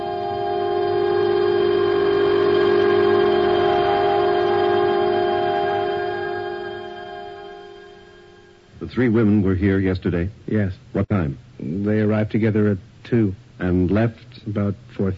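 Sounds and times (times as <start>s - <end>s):
subway train horn blaring: 0.0s - 8.6s
speech: 9.0s - 15.1s.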